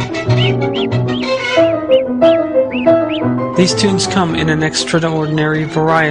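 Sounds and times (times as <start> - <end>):
bird singing short arching whistled notes: 0.1 - 3.3
speech: 3.6 - 6.0.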